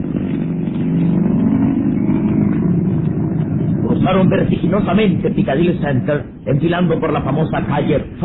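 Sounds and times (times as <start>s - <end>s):
modern Rolls Royce sports car engine accelerating: 0.0s - 6.2s
speech: 4.1s - 8.2s.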